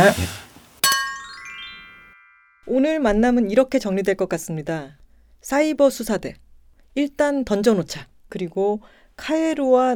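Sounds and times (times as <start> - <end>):
speech: 0.0 - 0.4, 2.7 - 6.4, 7.0 - 9.9
beer glasses clinking in a toast: 0.8 - 2.2.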